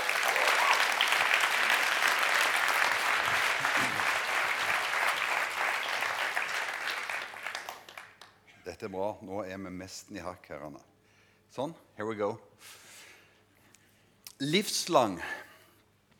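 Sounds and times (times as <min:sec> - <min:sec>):
audience applause: 0:00.0 - 0:08.3
speech: 0:08.8 - 0:10.9, 0:11.5 - 0:12.8, 0:14.4 - 0:15.4.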